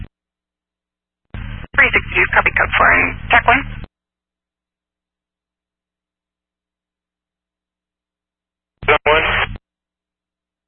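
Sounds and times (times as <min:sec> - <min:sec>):
garbled radio transmission with heavy static: 0:01.4 - 0:03.9, 0:08.8 - 0:09.6
speech: 0:02.9 - 0:03.8.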